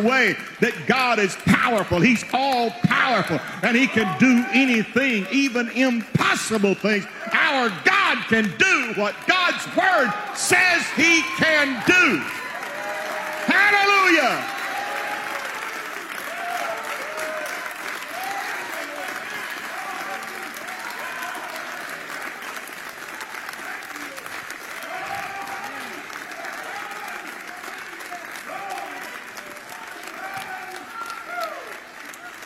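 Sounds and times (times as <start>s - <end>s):
speech: 0.0s - 12.4s, 13.5s - 14.6s
audience clapping hands in praise of God: 0.0s - 32.4s.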